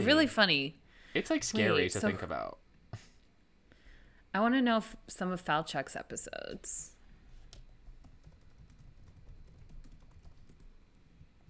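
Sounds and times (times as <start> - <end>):
speech: 0.0 - 2.6, 4.4 - 6.9
low hum: 0.0 - 11.4
typing on a computer keyboard: 7.4 - 10.8.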